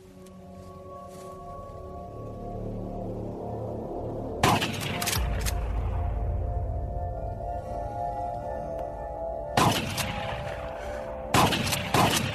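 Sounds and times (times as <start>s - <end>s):
low droning background: 0.0s - 12.3s
shotgun blasts fired at a corpse: 9.6s - 10.4s, 11.3s - 12.3s.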